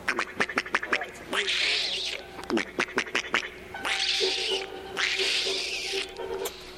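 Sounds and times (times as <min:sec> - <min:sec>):
gray squirrel chipping in oak trees: 0:00.1 - 0:06.6.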